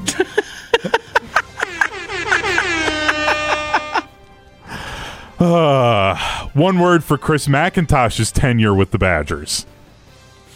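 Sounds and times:
laughter: 0:00.0 - 0:04.1
loud air horn blasts: 0:01.6 - 0:04.2
speech: 0:05.4 - 0:09.8.

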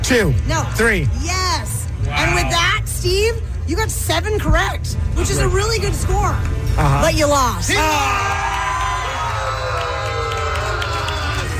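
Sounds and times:
speech: 0:00.1 - 0:08.4
loud crowd cheering and whooping: 0:07.7 - 0:11.5.

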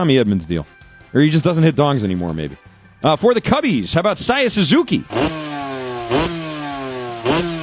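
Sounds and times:
speech: 0:00.0 - 0:05.4, 0:06.1 - 0:06.4
motor engine revving and idling: 0:05.0 - 0:07.6.

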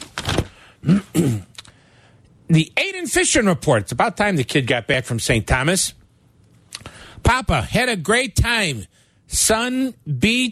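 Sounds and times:
pile of paper being shuffled: 0:00.0 - 0:00.6
speech: 0:02.5 - 0:06.0, 0:07.2 - 0:10.5.

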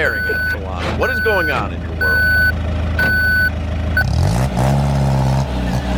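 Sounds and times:
speech: 0:00.0 - 0:02.3
armoured truck reversing beeper: 0:00.0 - 0:04.3
heavy truck engine rumbling and revving: 0:00.0 - 0:05.9.

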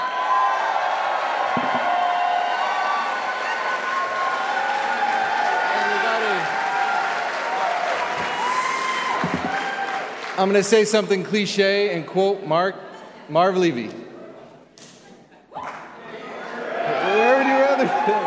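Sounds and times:
scattered shouts and whoops from the crowd: 0:00.0 - 0:10.1, 0:16.8 - 0:18.2
large crowd applauding and cheering at a political campaign event in Buffalo: 0:00.0 - 0:11.3, 0:15.6 - 0:18.2
speech: 0:01.6 - 0:01.8, 0:10.4 - 0:14.0.

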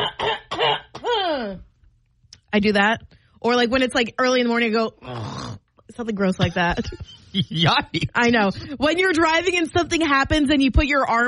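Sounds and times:
person clearing throat: 0:00.0 - 0:01.4
speech: 0:02.5 - 0:11.2
voiced downward-sliding grunt: 0:05.0 - 0:05.6.

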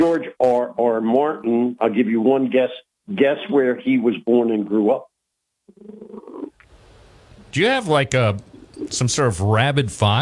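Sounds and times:
speech: 0:00.0 - 0:05.1, 0:05.7 - 0:06.5, 0:07.5 - 0:10.2
low steady hiss: 0:00.0 - 0:10.2
cat purring on a person's lap: 0:05.7 - 0:06.6.

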